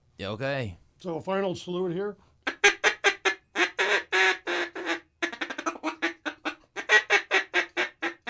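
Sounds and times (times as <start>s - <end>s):
speech: 0.2s - 2.6s
ducks quacking: 2.4s - 8.2s.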